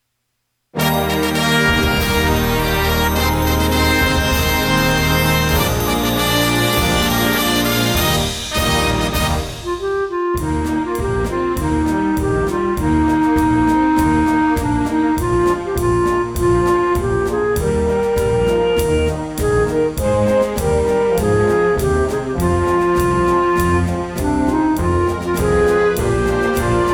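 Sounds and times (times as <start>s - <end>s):
backing track with melody: 0.8s - 26.9s.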